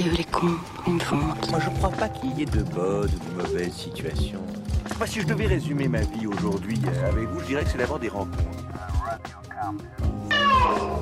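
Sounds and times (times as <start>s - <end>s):
speech: 0.0s - 11.0s
person imitating cat meows: 10.3s - 11.0s.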